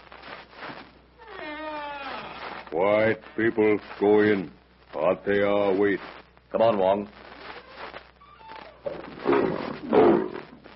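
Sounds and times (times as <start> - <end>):
speech: 2.7 - 7.2
lion roaring: 9.2 - 10.5.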